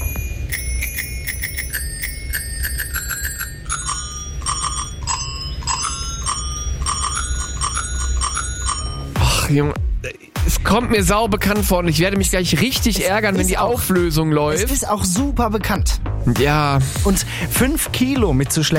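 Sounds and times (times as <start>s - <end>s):
bicycle bell playing a tune: 0.0s - 9.2s
low rumbling background: 0.0s - 18.5s
speech: 9.5s - 18.7s.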